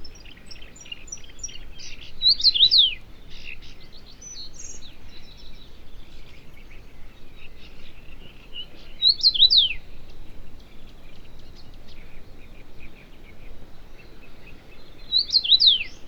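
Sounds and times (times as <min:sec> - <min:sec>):
common rosefinch song: 0:00.0 - 0:06.4, 0:07.9 - 0:10.0, 0:13.9 - 0:16.0.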